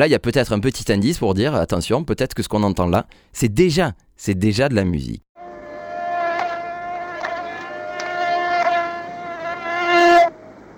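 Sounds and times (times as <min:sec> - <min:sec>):
speech: 0:00.0 - 0:05.2
fly buzzing around a man: 0:05.4 - 0:10.3.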